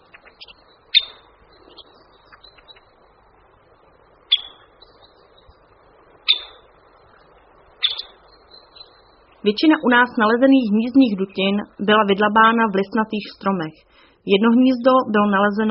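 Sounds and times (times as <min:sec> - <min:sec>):
Syrian woodpecker giving sharp high calls: 0:00.0 - 0:03.0, 0:04.2 - 0:05.6, 0:06.2 - 0:09.5
low steady outdoor noise: 0:00.0 - 0:15.6
speech: 0:09.4 - 0:15.6.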